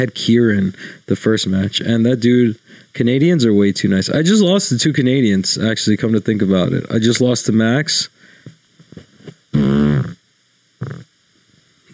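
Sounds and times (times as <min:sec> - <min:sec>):
speech: 0:00.0 - 0:08.2, 0:09.5 - 0:10.2, 0:10.8 - 0:11.1
loud buzzy fart into the microphone: 0:09.2 - 0:10.2, 0:10.8 - 0:11.1.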